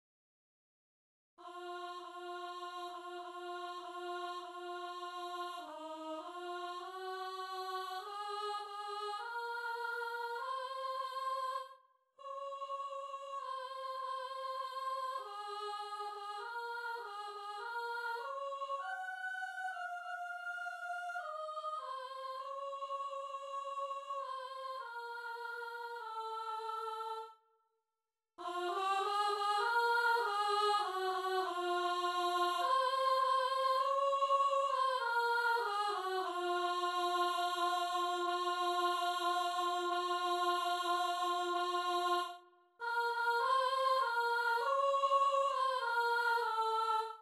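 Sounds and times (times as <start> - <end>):
soprano singing: 1.4 - 27.3, 28.4 - 47.2.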